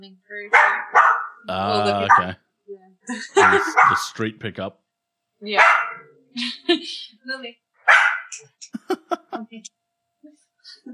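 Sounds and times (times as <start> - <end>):
speech: 0.0 - 2.4, 3.1 - 4.8, 5.4 - 10.9
dog barking in short sharp yaps: 0.5 - 1.4, 2.0 - 2.3, 3.4 - 4.0, 5.6 - 6.1, 7.9 - 8.4
laughter: 1.5 - 2.3, 3.1 - 4.1, 8.7 - 9.5.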